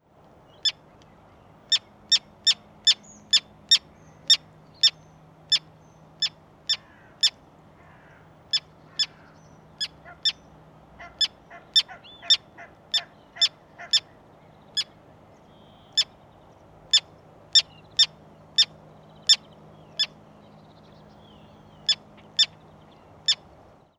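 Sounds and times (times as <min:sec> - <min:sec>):
common tern Sterna hirundo calling: 0:00.5 - 0:16.3, 0:16.9 - 0:20.2.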